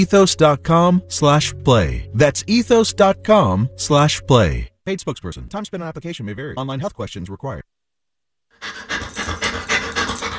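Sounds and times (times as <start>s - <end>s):
speech: 0.0s - 7.8s
dog panting: 8.6s - 10.3s.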